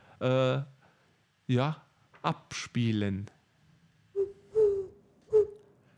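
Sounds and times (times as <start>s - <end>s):
speech: 0.2s - 0.7s, 1.5s - 3.4s
eagle-owl hooting: 4.1s - 5.7s.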